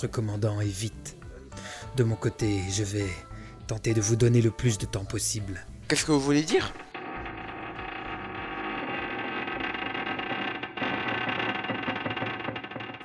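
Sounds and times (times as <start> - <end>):
speech: 0.0 - 1.2, 1.9 - 6.8
distant metallic creaking: 6.4 - 13.0
low rumbling undertone: 6.7 - 13.0.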